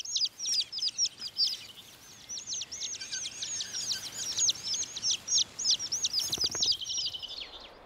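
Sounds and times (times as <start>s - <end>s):
thrush chicks chirping in the nest: 0.0s - 7.8s.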